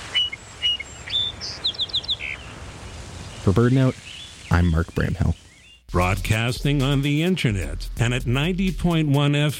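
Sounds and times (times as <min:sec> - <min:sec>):
song sparrow singing: 0:00.0 - 0:05.9
speech: 0:03.4 - 0:09.5.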